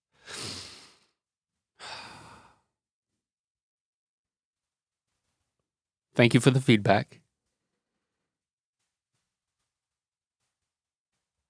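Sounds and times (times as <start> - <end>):
person taking a little breath: 1.8 - 2.7
speech: 6.2 - 7.2.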